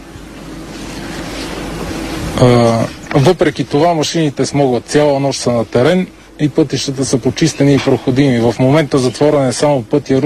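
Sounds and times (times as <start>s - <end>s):
strong wind roaring: 1.8s - 3.4s
speech: 2.4s - 10.2s.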